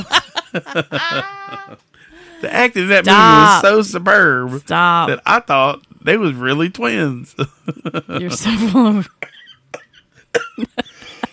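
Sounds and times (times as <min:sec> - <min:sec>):
laughter: 0:00.0 - 0:01.8, 0:07.4 - 0:09.1, 0:10.6 - 0:11.3
speech: 0:00.0 - 0:09.3, 0:10.3 - 0:10.9
man coughing harshly: 0:09.2 - 0:10.7.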